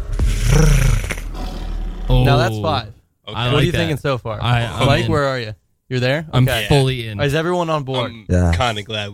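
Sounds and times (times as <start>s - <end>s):
tiger growling and roaring: 0.1s - 2.6s
speech: 2.3s - 9.1s.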